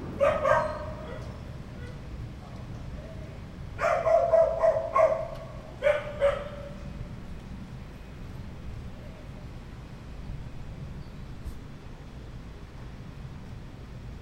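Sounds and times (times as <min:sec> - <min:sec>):
dog barking: 0:00.2 - 0:02.0, 0:03.8 - 0:06.8.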